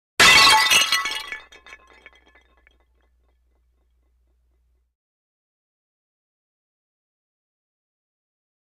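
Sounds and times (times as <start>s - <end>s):
large ceramic clay pot breaking: 0.2s - 3.1s.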